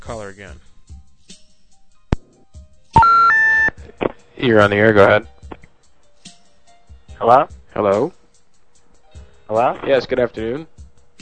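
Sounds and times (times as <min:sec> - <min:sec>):
speech: 0:00.1 - 0:00.7, 0:04.0 - 0:05.3, 0:07.2 - 0:08.2, 0:09.5 - 0:10.7
call-in phone line automatic on-air signal of rising electronic tones: 0:03.0 - 0:03.8.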